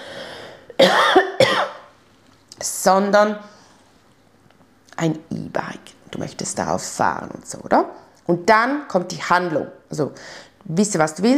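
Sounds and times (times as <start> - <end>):
person coughing: 0.7 - 1.9
speech: 2.8 - 3.5, 5.0 - 11.3.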